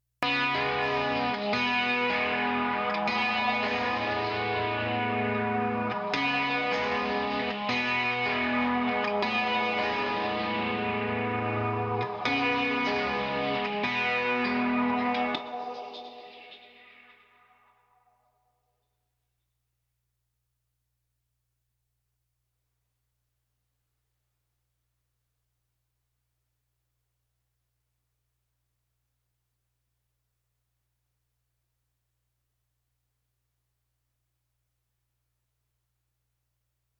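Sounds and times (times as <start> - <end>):
guitar: 0.2 - 18.0.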